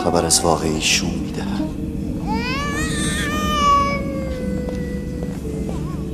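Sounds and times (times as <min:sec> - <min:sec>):
speech: 0:00.1 - 0:01.8
infant crying with a strained wail: 0:02.2 - 0:06.0.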